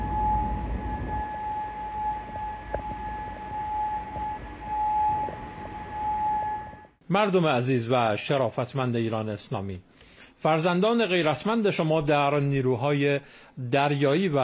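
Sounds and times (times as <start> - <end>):
air raid siren tone in Bahrain: 0.0 - 7.0
low rumble of outdoor noise: 0.0 - 7.0
speech: 7.1 - 14.4.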